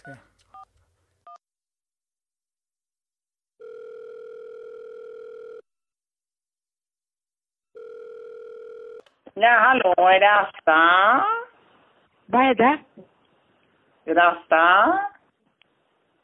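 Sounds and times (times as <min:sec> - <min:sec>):
speech: 0:00.0 - 0:00.3, 0:09.4 - 0:11.4, 0:12.3 - 0:13.1, 0:14.1 - 0:15.1
telephone ringing tones: 0:03.6 - 0:05.6, 0:07.8 - 0:09.0.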